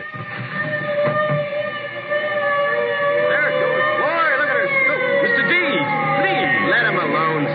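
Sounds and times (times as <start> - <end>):
crowd of voices murmuring: 0.0 - 7.5
fire engine siren wailing: 0.0 - 7.5.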